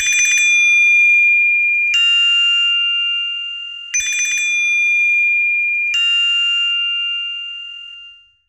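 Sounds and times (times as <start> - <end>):
Nokia official phone ringtone: 0.0 - 8.2.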